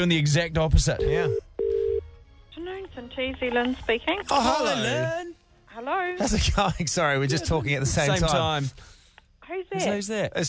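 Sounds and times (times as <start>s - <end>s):
speech: 0.0s - 1.4s, 3.0s - 10.4s
steady electronic telephone ringing tone as a call is placed: 1.0s - 2.0s.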